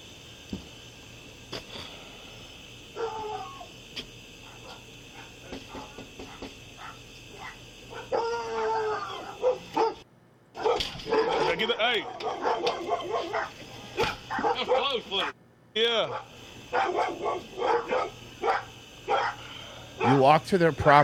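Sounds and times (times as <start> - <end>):
several dogs barking: 4.4 - 15.4, 16.1 - 20.3
speech: 20.5 - 21.0.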